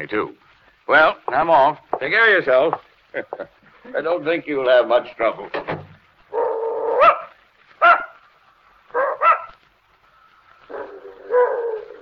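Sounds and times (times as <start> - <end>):
speech: 0.0 - 5.7
old female dog barking, yelping and whimpering: 6.3 - 8.2, 8.9 - 9.6, 10.7 - 11.9.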